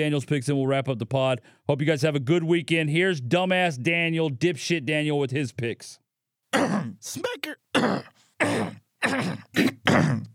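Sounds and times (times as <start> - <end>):
speech: 0.0 - 10.3
person clearing throat: 6.5 - 10.3
person coughing with loud gravelly bursts: 6.5 - 10.3.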